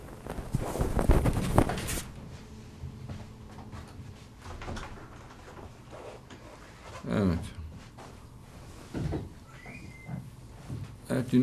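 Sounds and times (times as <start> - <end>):
footsteps: 0.0 - 4.6, 5.4 - 9.4.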